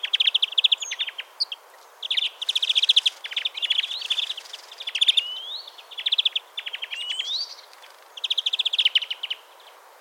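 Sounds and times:
European greenfinch Chloris chloris twittering: 0.0s - 9.4s.

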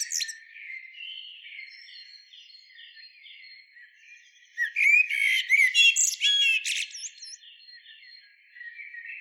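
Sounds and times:
Eurasian blackbird Turdus merula singing: 0.0s - 0.4s, 4.5s - 9.2s.

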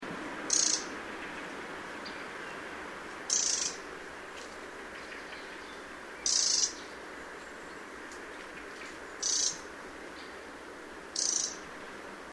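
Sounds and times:
steady background hiss: 0.0s - 12.3s
Eurasian wren Troglodytes troglodytes calling: 0.4s - 11.8s.

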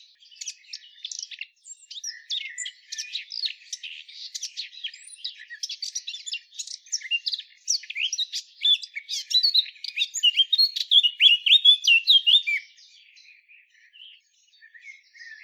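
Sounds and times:
Eurasian blackcap Sylvia atricapilla warbling song: 0.1s - 15.4s.

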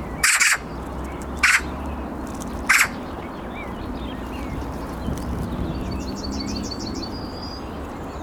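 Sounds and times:
small birds chirping: 0.0s - 8.2s
Eurasian magpie Pica pica harsh rasping chack calls: 0.2s - 0.7s, 1.4s - 1.7s, 2.7s - 3.0s.

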